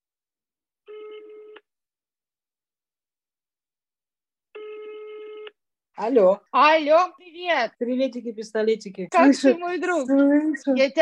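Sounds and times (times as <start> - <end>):
telephone ringback tone as a call is placed: 0.9 - 1.6, 4.6 - 5.4
speech: 6.0 - 11.0.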